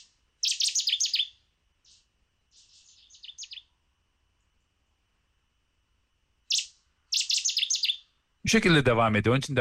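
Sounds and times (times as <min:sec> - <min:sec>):
small bird singing high rapid chirping phrases: 0:00.0 - 0:03.8, 0:06.4 - 0:08.3
speech: 0:08.5 - 0:09.5.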